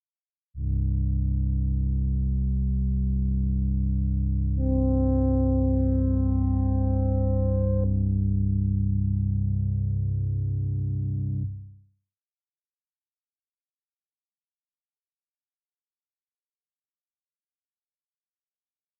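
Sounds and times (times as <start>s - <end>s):
synth pad without effects: 0.6s - 11.6s.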